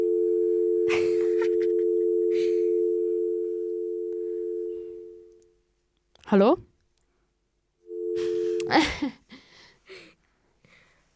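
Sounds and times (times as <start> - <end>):
telephone line tone of a call connecting: 0.0 - 5.3, 7.9 - 8.7
speech: 6.3 - 6.7.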